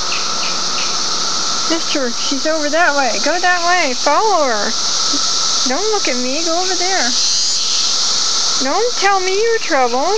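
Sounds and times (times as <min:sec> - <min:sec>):
cicada buzzing: 0:00.0 - 0:10.1
speech: 0:01.7 - 0:07.4, 0:08.6 - 0:10.1.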